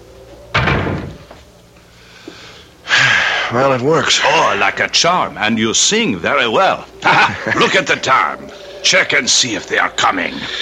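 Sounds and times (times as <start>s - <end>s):
quiet hum: 0.0s - 10.6s
door at the bottom of the stairs slamming: 0.5s - 1.3s
speech: 3.5s - 10.6s
laughter: 6.5s - 9.6s.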